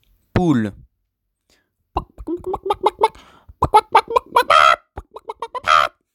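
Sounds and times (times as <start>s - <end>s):
hen clucking: 2.0s - 6.1s.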